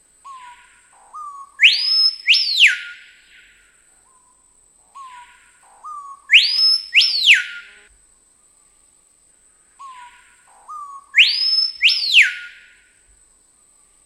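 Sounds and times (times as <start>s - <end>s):
Screaming piha song: 0.3s - 3.6s, 5.0s - 7.9s, 9.8s - 12.9s.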